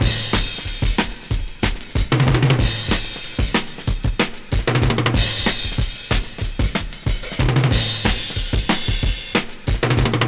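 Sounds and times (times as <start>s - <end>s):
93 bpm dance breakbeat drum loop in A: 0.0s - 10.2s.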